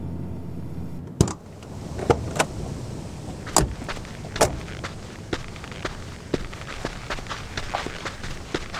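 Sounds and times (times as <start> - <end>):
car engine rumbling: 0.0 - 8.7
door clicking: 1.1 - 2.5
soft uneven footsteps of people sneaking toward a house: 1.6 - 8.7.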